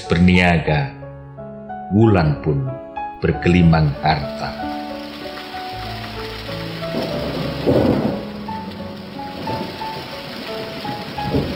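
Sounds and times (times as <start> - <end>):
speech: 0.1 - 1.0, 1.9 - 4.8, 7.0 - 8.2
deep rumbles of thunder: 3.9 - 11.5
steady heavy rain: 4.2 - 11.5.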